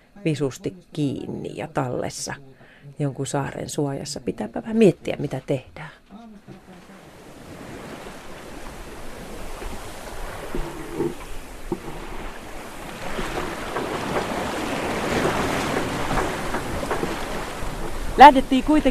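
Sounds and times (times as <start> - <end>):
speech: 0.2 - 6.6, 18.2 - 18.8
choppy sea waves splashing and surging: 6.5 - 18.8
strong wind over choppy sea: 7.0 - 18.8.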